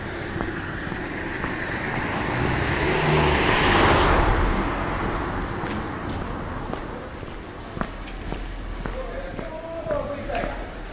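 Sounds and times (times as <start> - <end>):
footsteps: 0.0 - 3.2, 4.0 - 10.9
car approaching and passing by: 0.0 - 7.2
quiet outdoor ambience: 0.0 - 10.9.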